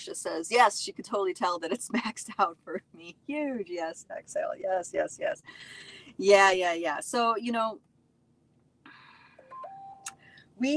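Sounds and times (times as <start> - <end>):
speech: 0.0 - 7.9, 10.6 - 10.7
faint electronic phone beeps: 9.4 - 10.2.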